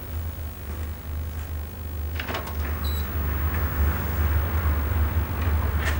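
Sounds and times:
steady low hum: 0.0s - 5.9s
door creak: 2.2s - 3.7s
motel room door opening: 2.2s - 5.9s.

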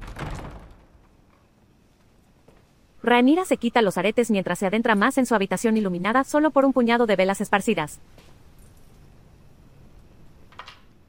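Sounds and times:
heavy castle bedroom door closing thud: 0.0s - 1.3s
speech: 3.0s - 8.3s.

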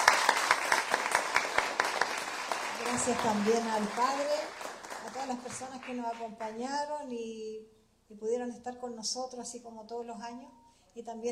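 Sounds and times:
crowd applauding: 0.0s - 6.6s
speech: 3.0s - 11.3s.

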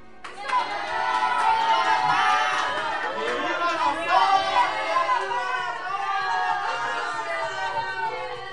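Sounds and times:
lively crowd of villagers cheering and chattering: 0.0s - 8.5s
scattered claps: 0.2s - 4.0s
villagers shouting with joy: 0.3s - 8.5s.

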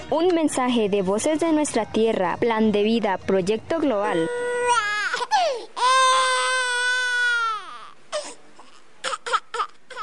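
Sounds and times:
speech: 0.1s - 4.8s
young girl crying: 4.0s - 10.0s.

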